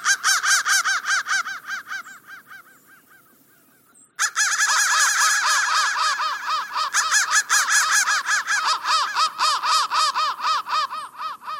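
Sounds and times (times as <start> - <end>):
crows cawing: 0.0 - 11.5.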